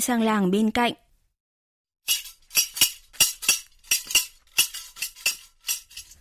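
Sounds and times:
speech: 0.0s - 1.0s, 2.1s - 2.3s
travelling candy seller's scissors clacking at dusk in a small village: 2.1s - 6.1s.

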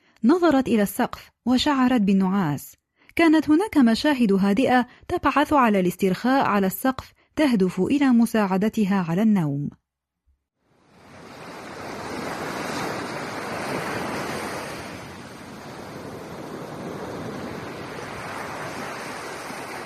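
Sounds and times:
speech: 0.2s - 9.8s
waves washing onto a beach: 10.7s - 19.8s
wind blowing across a beach: 10.7s - 19.8s.

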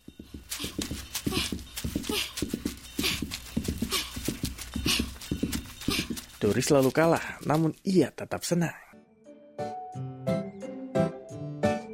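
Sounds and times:
hoofbeats of a calf running home: 0.0s - 7.6s
speech: 6.4s - 8.8s.

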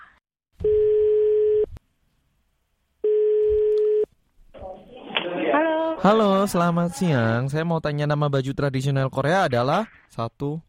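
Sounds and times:
telephone ringback tone while placing a call: 0.6s - 1.7s, 3.0s - 4.1s
speech: 6.0s - 10.6s.

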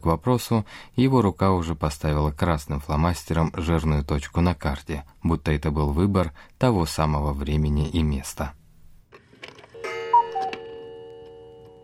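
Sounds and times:
speech: 0.0s - 8.6s
clock chime striking one o'clock at night: 9.8s - 11.8s.

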